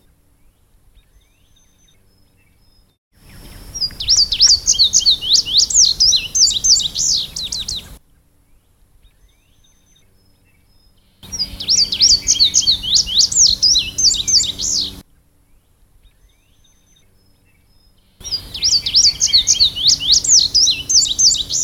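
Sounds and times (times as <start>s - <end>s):
indigo bunting singing high rising and falling paired notes: 3.8s - 8.0s, 11.2s - 15.0s, 18.2s - 21.6s.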